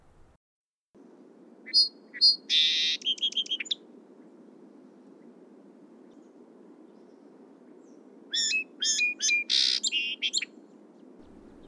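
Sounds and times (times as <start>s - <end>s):
low hiss: 0.0s - 0.4s, 1.0s - 11.6s
song sparrow singing: 1.7s - 3.8s, 6.1s - 11.6s.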